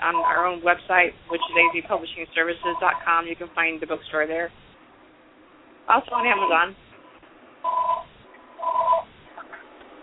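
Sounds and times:
telephone ringing in electronic trilling bursts: 0:00.0 - 0:00.5, 0:01.3 - 0:01.9, 0:02.5 - 0:03.2, 0:06.1 - 0:06.7, 0:07.7 - 0:09.1
speech: 0:00.0 - 0:04.7, 0:05.9 - 0:06.8.

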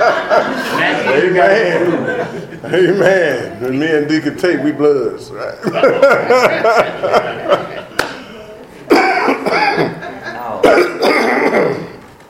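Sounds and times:
laughter: 0:00.0 - 0:12.0
speech: 0:00.4 - 0:07.9
person loudly clearing throat: 0:08.9 - 0:10.0, 0:10.6 - 0:12.0
rough coughing bursts and raspy hacking: 0:08.9 - 0:12.0.

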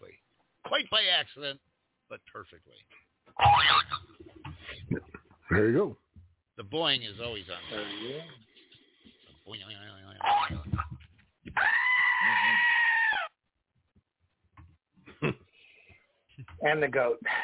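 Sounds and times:
speech: 0:00.7 - 0:04.2, 0:05.5 - 0:06.0, 0:06.6 - 0:08.4, 0:16.6 - 0:17.4
goat bleating: 0:11.6 - 0:13.3.

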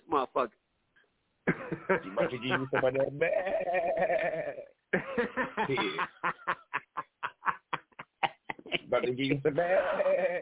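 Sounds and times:
speech: 0:00.2 - 0:00.6, 0:01.9 - 0:06.5, 0:08.9 - 0:10.4
laughter: 0:01.5 - 0:10.4
goat bleating with a wavering quavering tone: 0:02.4 - 0:04.7, 0:09.5 - 0:10.4.

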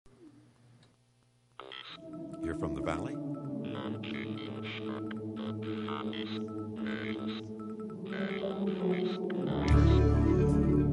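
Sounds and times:
speech: 0:02.6 - 0:03.2
whale calls as wavering tonal moans: 0:03.4 - 0:10.0.

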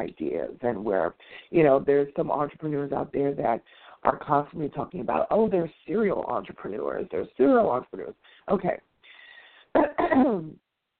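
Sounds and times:
speech: 0:00.0 - 0:08.9, 0:09.8 - 0:10.6
person clearing throat: 0:09.8 - 0:10.6
person coughing: 0:09.8 - 0:10.6.

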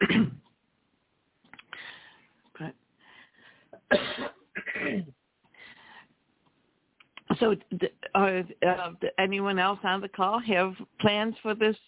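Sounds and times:
person on a group call clearing throat over a phone line: 0:00.0 - 0:00.4, 0:03.8 - 0:05.2
speech: 0:02.6 - 0:02.8, 0:07.4 - 0:11.8.

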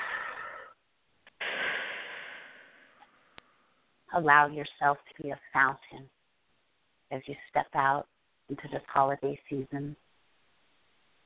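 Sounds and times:
breathy inhale: 0:00.0 - 0:00.8, 0:01.4 - 0:03.8
long slow exhale: 0:00.0 - 0:00.8, 0:01.4 - 0:03.7
speech: 0:04.2 - 0:06.2, 0:07.1 - 0:10.0.

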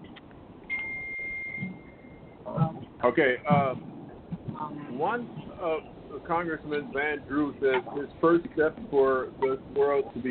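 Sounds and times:
electronic phone beep on a call: 0:00.7 - 0:02.4
speech: 0:03.0 - 0:03.9, 0:05.0 - 0:10.2.

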